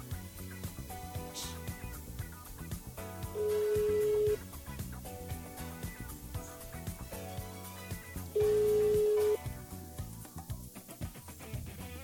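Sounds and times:
faint music: 0.0 - 12.0
telephone ringback tone of an outgoing call: 3.4 - 4.4, 8.4 - 9.4.

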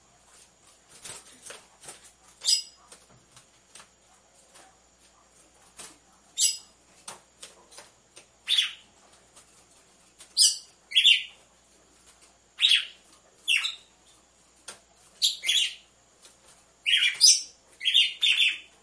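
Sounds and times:
female red-cowled cardinal chirping: 2.4 - 2.8, 6.4 - 6.7, 8.4 - 8.9, 10.3 - 11.4, 12.6 - 13.9, 15.2 - 15.9, 16.8 - 18.8.

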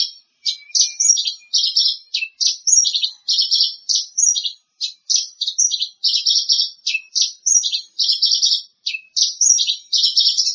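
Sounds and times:
bird song of rapid chirping and high twittering: 0.0 - 10.5.

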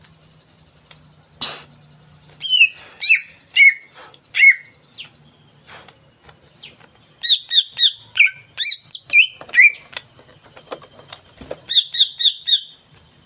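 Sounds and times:
greater green leafbird song of a caged bird: 0.0 - 13.2.

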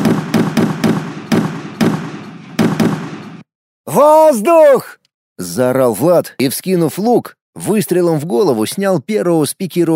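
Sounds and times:
grenade explosions across the width of a road in battle: 0.0 - 3.5
speech: 4.0 - 9.9.

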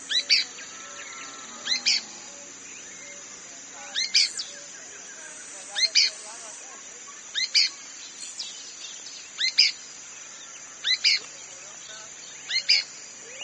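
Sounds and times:
pale-breasted spinetail Synallaxis albescens inaequalis calling: 0.0 - 13.4
steady high insect hum: 0.0 - 13.4.

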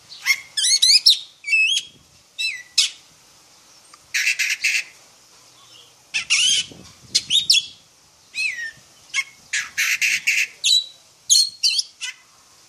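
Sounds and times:
Oriental magpie-robin singing, black form: 0.1 - 3.0, 5.5 - 12.2.

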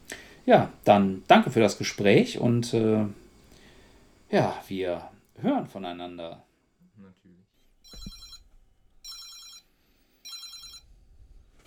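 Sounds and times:
speech: 0.5 - 3.2, 4.3 - 8.2
telephone ringing with electronic trill: 7.8 - 10.9.

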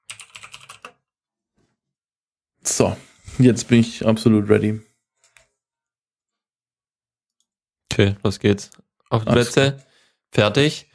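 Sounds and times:
typing a message on a computer keyboard: 0.0 - 1.0
speech: 2.8 - 4.9, 8.0 - 10.9.

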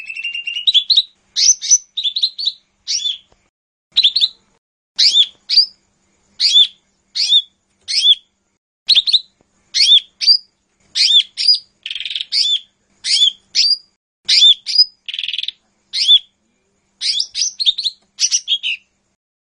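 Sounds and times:
bird song of short bright whistled phrases and rasping buzzy bursts: 0.0 - 19.0.

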